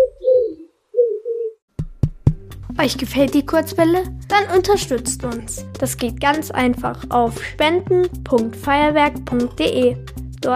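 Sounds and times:
pigeon cooing: 0.0s - 1.6s
speech: 2.8s - 10.5s.

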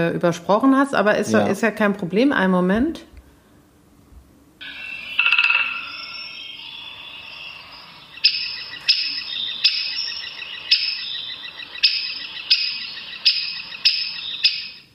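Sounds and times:
speech: 0.0s - 3.1s
great spotted woodpecker alarm call: 4.6s - 14.9s.

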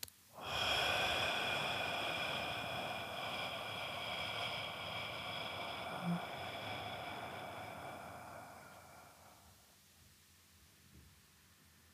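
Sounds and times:
deep breath in during a stress-relief breathing exercise: 0.4s - 9.7s.

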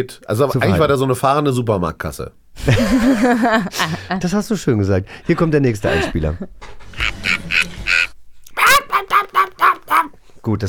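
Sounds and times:
speech: 0.0s - 6.8s, 10.5s - 10.6s
laughter: 2.6s - 4.3s, 5.7s - 10.1s
voice imitating a parrot: 8.5s - 10.2s.

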